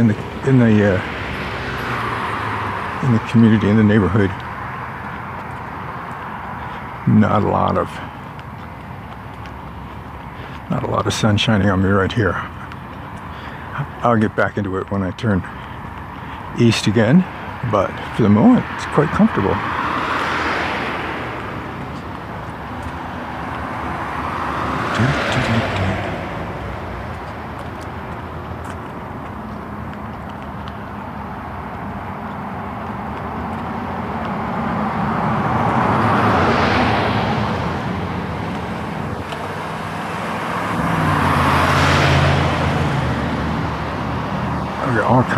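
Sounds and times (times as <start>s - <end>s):
speech: 0.0s - 1.2s, 3.0s - 4.4s, 7.1s - 8.1s, 10.7s - 12.6s, 13.8s - 15.6s, 16.6s - 19.7s
school buses passing on a neighborhood road on a hot sunny morning: 0.0s - 45.3s
steady bed of traffic noise: 0.0s - 45.3s.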